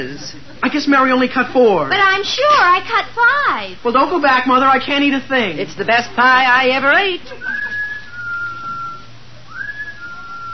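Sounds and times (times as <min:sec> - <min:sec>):
speech: 0:00.0 - 0:07.5
low hum: 0:00.0 - 0:10.5
person whistling a steady clear tune: 0:07.4 - 0:10.5.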